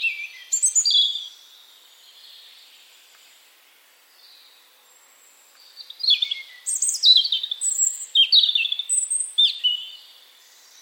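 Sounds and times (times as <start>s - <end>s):
European robin singing: 0.0s - 2.8s, 5.6s - 10.8s.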